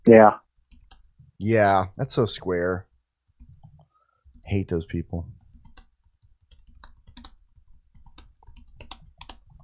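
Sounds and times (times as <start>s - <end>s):
speech: 0.1s - 0.4s, 1.4s - 2.9s, 4.5s - 5.4s
typing on a computer keyboard: 0.6s - 1.2s, 5.4s - 9.6s.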